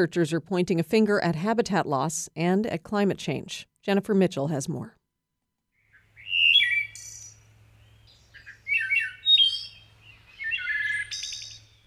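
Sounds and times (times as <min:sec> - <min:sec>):
speech: 0:00.0 - 0:05.0
wood thrush song in the woods of Maine: 0:05.8 - 0:11.8.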